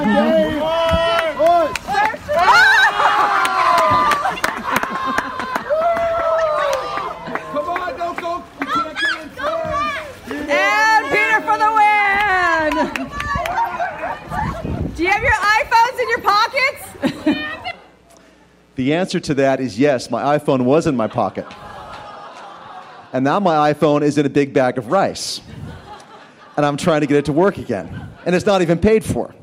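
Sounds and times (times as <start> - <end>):
laughter: 0.0 - 15.0, 16.7 - 18.6, 20.8 - 23.7, 24.8 - 28.8
crowd cheering and shouting at a stand-up paddleboard race: 0.0 - 16.3
speech: 18.8 - 21.6, 23.1 - 25.5, 26.6 - 29.4.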